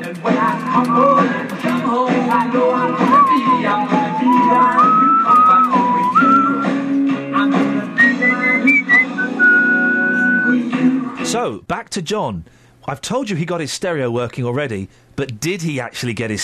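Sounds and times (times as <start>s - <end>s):
loud backing track of band music: 0.0s - 11.3s
speech: 0.1s - 1.5s, 11.5s - 16.4s
person whistling along to a song: 0.6s - 1.4s, 3.0s - 6.9s, 8.0s - 10.6s.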